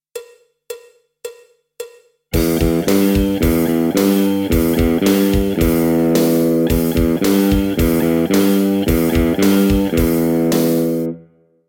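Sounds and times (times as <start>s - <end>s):
electric guitar metal-rock lick: 2.4s - 11.2s.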